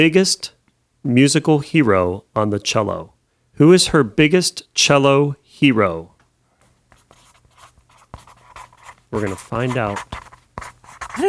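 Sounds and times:
speech: 0:00.0 - 0:06.1, 0:09.1 - 0:10.2
pen scribbling on paper writing a quiz answer: 0:06.9 - 0:11.2.

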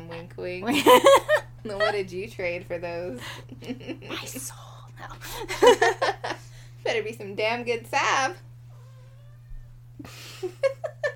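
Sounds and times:
speech: 0:00.4 - 0:08.5, 0:10.0 - 0:10.9
cat meowing: 0:08.7 - 0:09.7.

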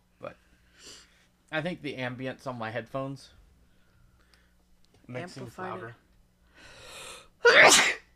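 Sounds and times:
speech: 0:00.2 - 0:03.4, 0:05.1 - 0:06.0
person sneezing: 0:07.4 - 0:08.1.

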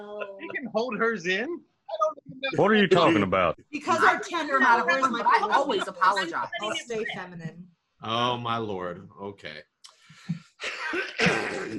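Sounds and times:
laughter: 0:00.0 - 0:01.5, 0:02.4 - 0:07.4
speech: 0:00.7 - 0:01.7, 0:02.4 - 0:09.7, 0:10.9 - 0:11.7
person clearing throat: 0:10.6 - 0:11.7.

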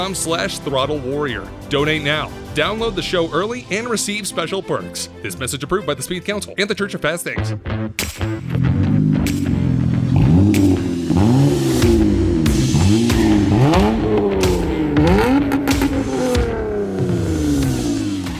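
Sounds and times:
speech: 0:00.0 - 0:09.4
2004 Honda Accord engine revving: 0:08.2 - 0:18.3.

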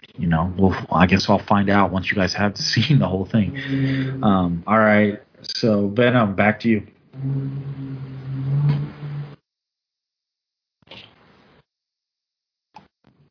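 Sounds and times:
speech: 0:00.3 - 0:07.9
bus engine rumbling past: 0:03.3 - 0:04.6, 0:07.2 - 0:09.4.

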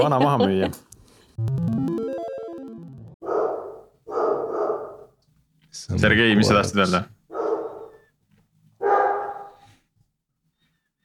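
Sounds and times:
laughter: 0:00.0 - 0:00.8
speech: 0:00.0 - 0:01.7, 0:05.9 - 0:07.2
large dog barking with deep woofs: 0:03.2 - 0:05.2, 0:06.3 - 0:08.0, 0:08.8 - 0:09.6.

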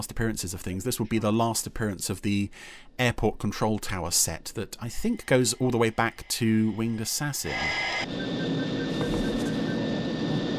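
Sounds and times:
speech: 0:00.0 - 0:08.9
airplane engine drone with high whine in flight: 0:04.8 - 0:10.5.

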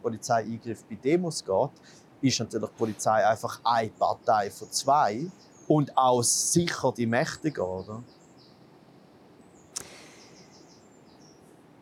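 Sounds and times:
speech: 0:00.0 - 0:08.2
faint bird chirps outdoors: 0:00.0 - 0:11.6
soft hiss: 0:00.0 - 0:11.7
sharp click: 0:09.7 - 0:10.2.

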